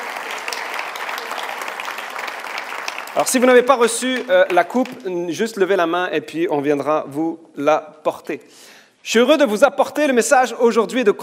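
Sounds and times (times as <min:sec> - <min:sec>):
congregation applauding: 0:00.0 - 0:05.4
speech: 0:03.2 - 0:11.2.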